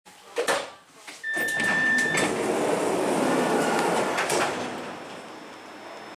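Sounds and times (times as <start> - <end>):
Metro G5 train door opening: 1.3 - 6.1.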